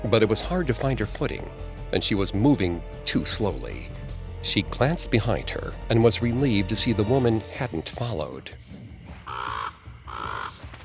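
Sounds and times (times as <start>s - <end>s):
speech: 0.0s - 9.8s
crow cawing: 9.3s - 10.8s.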